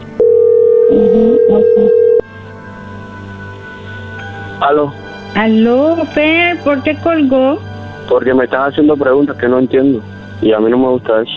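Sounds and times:
telephone ringing with an incoming call: 0:00.2 - 0:02.3
speech: 0:00.9 - 0:02.0, 0:04.6 - 0:11.3.

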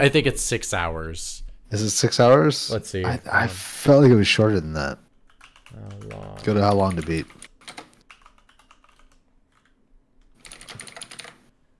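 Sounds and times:
speech: 0:00.0 - 0:05.0, 0:05.8 - 0:07.4
typing on a computer keyboard: 0:05.3 - 0:11.5.

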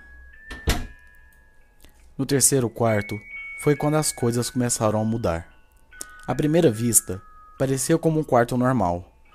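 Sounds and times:
door opening: 0:00.5 - 0:01.0
speech: 0:02.2 - 0:05.5, 0:06.3 - 0:09.1.

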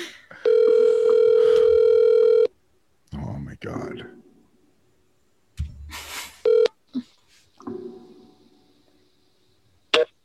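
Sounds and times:
phone call ringing through a handset: 0:00.4 - 0:02.5, 0:06.4 - 0:06.8.

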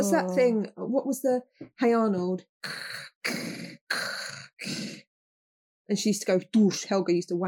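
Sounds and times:
speech: 0:00.0 - 0:05.1, 0:05.9 - 0:07.4
person imitating heavy breathing: 0:02.6 - 0:05.0.

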